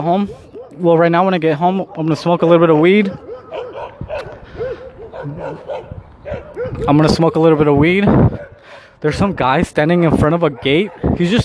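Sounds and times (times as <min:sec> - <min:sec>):
speech: 0:00.0 - 0:04.3, 0:06.8 - 0:08.4, 0:09.0 - 0:11.4
several dogs barking and yipping excitedly: 0:00.0 - 0:09.6, 0:10.2 - 0:11.4
dogs with high whining cries: 0:02.4 - 0:07.0.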